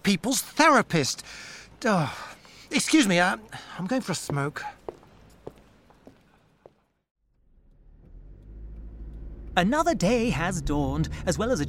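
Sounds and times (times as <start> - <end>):
speech: 0.1 - 4.8, 9.6 - 11.6
car engine rumble: 7.2 - 11.6.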